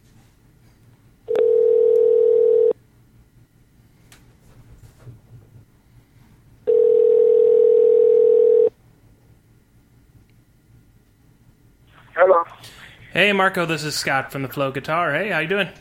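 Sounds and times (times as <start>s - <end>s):
telephone tones on an outgoing call being placed: 1.3s - 2.7s, 6.7s - 8.7s
speech: 13.2s - 15.7s.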